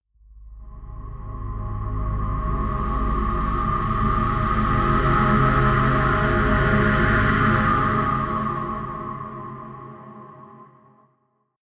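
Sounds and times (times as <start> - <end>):
deep atmospheric wind drone: 0.2 - 10.8.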